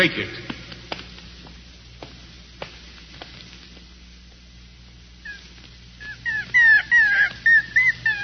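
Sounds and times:
speech: 0:00.0 - 0:00.5
puppy whimpering and yipping: 0:06.0 - 0:08.2.

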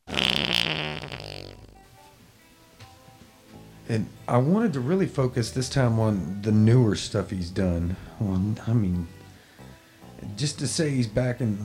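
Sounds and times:
loud drawn-out fart: 0:00.0 - 0:02.0
speech: 0:03.9 - 0:09.2, 0:10.4 - 0:11.6.

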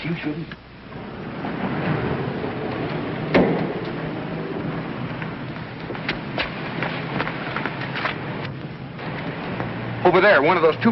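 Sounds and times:
speech: 0:00.0 - 0:01.0, 0:10.1 - 0:10.9
rain-like noise: 0:00.0 - 0:10.9
door thudding shut: 0:03.3 - 0:03.8.

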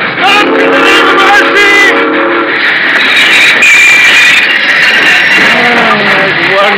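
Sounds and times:
train rushing roar settling into a hiss: 0:00.0 - 0:06.7
train metal brakes squealing: 0:02.3 - 0:06.6.

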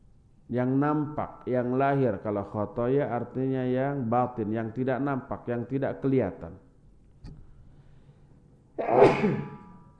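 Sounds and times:
speech: 0:00.5 - 0:06.6, 0:08.8 - 0:09.5
person sneezing: 0:08.8 - 0:09.6.

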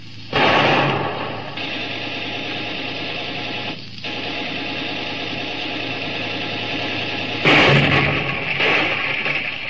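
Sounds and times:
steady droning motor hum: 0:00.0 - 0:09.6
ship's deck gun firing at a fleeing boat: 0:00.3 - 0:02.4, 0:06.6 - 0:09.6.

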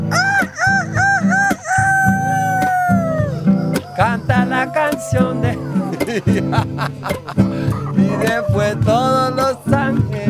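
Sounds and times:
steady rhythmic low thumping: 0:00.0 - 0:10.2
hoarse rooster crowing: 0:00.1 - 0:06.3, 0:07.6 - 0:09.2
laughter: 0:01.7 - 0:09.6
speech: 0:06.2 - 0:07.5, 0:08.2 - 0:10.0.

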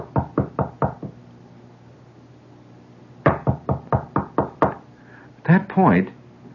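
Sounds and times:
quiet insistent knocking on a door: 0:00.0 - 0:01.2, 0:03.3 - 0:04.8
speech: 0:05.8 - 0:06.2.

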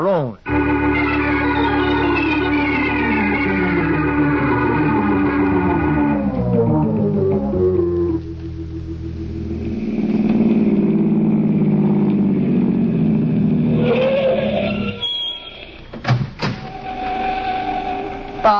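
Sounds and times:
speech: 0:00.0 - 0:00.5
hum: 0:00.1 - 0:18.5
car engine rumbling and revving as the car pulls away: 0:00.5 - 0:15.0.

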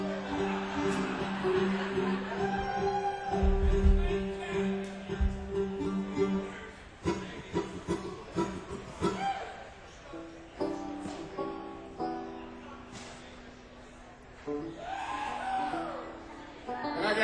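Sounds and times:
live audience cheering and whooping: 0:00.0 - 0:03.9, 0:09.0 - 0:09.7, 0:14.7 - 0:16.2
laughter: 0:00.0 - 0:05.2
steady wash of crowd noise: 0:00.0 - 0:17.2
scattered shouts and yells from audience: 0:02.2 - 0:03.8, 0:14.7 - 0:16.3.

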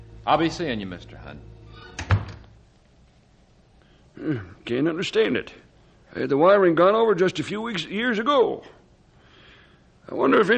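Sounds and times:
speech: 0:00.2 - 0:02.1, 0:04.2 - 0:08.8, 0:10.1 - 0:10.5
door shutting as someone leaves: 0:01.8 - 0:02.6.

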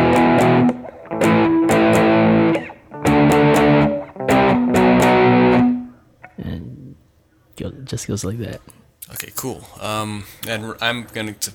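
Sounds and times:
distorted electric guitar playing power-chord progression: 0:00.0 - 0:05.9
speech: 0:07.9 - 0:11.5.

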